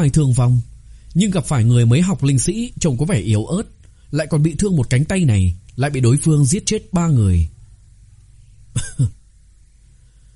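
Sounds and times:
speech: 0.0 - 7.6, 8.8 - 9.2
weakened wounded man coughing violently: 8.8 - 9.2.

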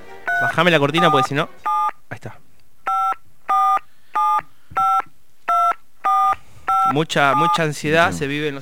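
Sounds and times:
telephone dialing tones for an international call: 0.3 - 2.0, 2.9 - 7.6
speech: 0.4 - 2.4, 6.9 - 8.6.

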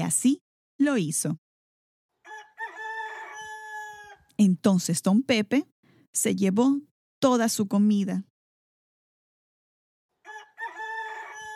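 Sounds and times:
speech: 0.1 - 1.4, 4.4 - 8.3
rooster crowing: 2.2 - 4.3, 10.2 - 11.5.

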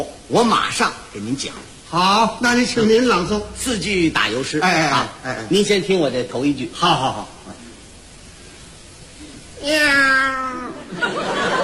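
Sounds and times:
speech: 0.3 - 7.4, 9.6 - 10.4
human voice imitating a cat's meow: 9.6 - 10.8
laughter: 10.6 - 11.6.

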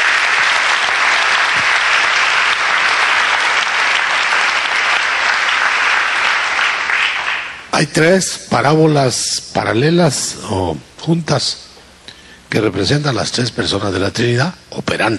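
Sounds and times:
church congregation applauding: 0.0 - 7.7
speech: 7.8 - 11.6, 12.5 - 15.1.

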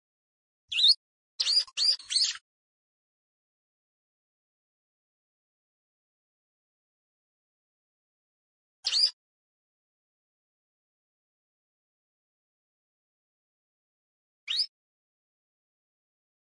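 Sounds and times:
Plain prinia calling in a rice field: 0.7 - 2.4, 8.8 - 9.2, 14.5 - 14.7.

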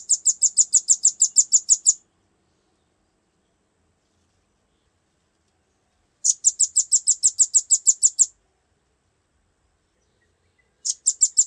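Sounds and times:
velvet-fronted nuthatch singing shrill trilling chips: 0.0 - 2.0, 6.2 - 8.3, 10.8 - 11.4.

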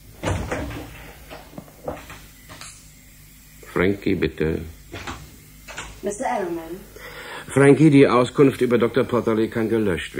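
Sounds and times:
hiss: 0.0 - 10.1
left-hand door opening and closing: 0.1 - 2.7, 4.9 - 6.0
speech: 3.8 - 4.8, 6.0 - 10.1.

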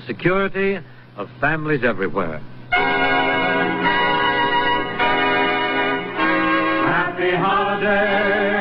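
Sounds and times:
speech: 0.1 - 2.5, 7.3 - 8.5
merry bells ringing: 2.7 - 6.9.

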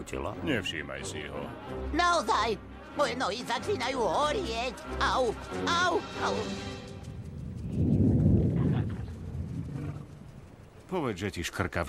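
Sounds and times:
speech: 0.0 - 6.8, 10.9 - 11.8
deep thunder rumbling from underground: 7.1 - 10.8.

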